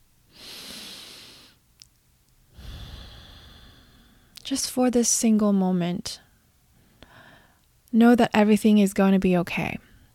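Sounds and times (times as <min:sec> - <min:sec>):
slow deep breath: 0:00.3 - 0:01.6, 0:02.5 - 0:04.4, 0:06.8 - 0:07.6
speech: 0:04.5 - 0:06.2, 0:07.9 - 0:09.9.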